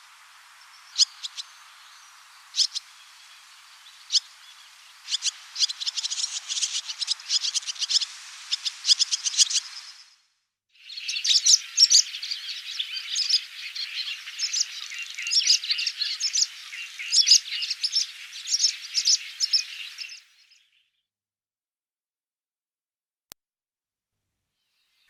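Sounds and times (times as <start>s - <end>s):
barn swallow twittering: 0.6s - 10.2s, 10.8s - 20.8s.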